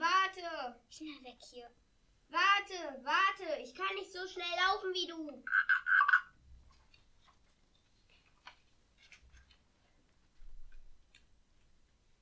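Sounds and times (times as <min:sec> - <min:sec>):
speech: 0:00.7 - 0:06.2
frog croaking: 0:05.4 - 0:06.4.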